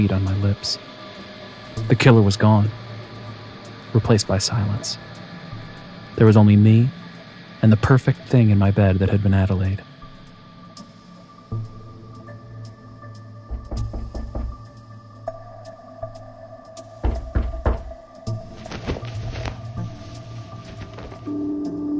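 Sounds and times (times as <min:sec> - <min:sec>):
speech: 0:00.0 - 0:01.0, 0:01.8 - 0:02.8, 0:03.9 - 0:05.2, 0:06.2 - 0:07.0, 0:07.6 - 0:09.9
low steady hum: 0:00.0 - 0:21.9
firm knocking on a door: 0:13.5 - 0:14.7, 0:17.0 - 0:18.0.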